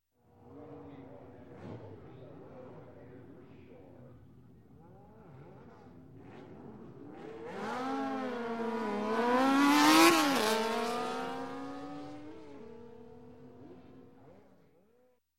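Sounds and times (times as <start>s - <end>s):
two drag racing motorcycles revving: 5.3s - 14.3s.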